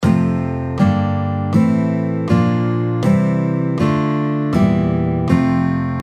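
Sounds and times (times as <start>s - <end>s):
guitar playing F major chord scale: 0.0s - 6.0s.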